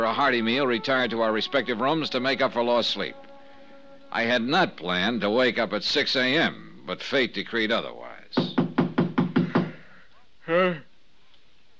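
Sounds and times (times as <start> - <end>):
speech: 0.0 - 3.3, 4.1 - 8.5, 10.5 - 10.9
solid knocks on a hotel door: 8.4 - 9.8.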